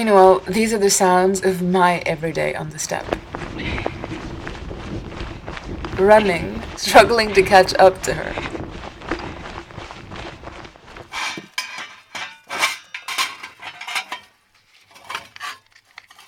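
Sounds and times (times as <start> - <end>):
speech: 0.0 - 3.9, 6.0 - 8.5
pots, dishes and cutlery clattering during home cooking: 11.1 - 16.2.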